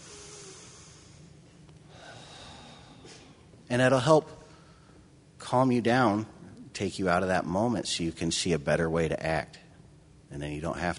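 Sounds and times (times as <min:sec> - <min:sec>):
slow deep belly breathing: 0:00.0 - 0:03.6, 0:04.4 - 0:05.2
speech: 0:03.7 - 0:04.4, 0:05.5 - 0:09.6, 0:10.3 - 0:10.9.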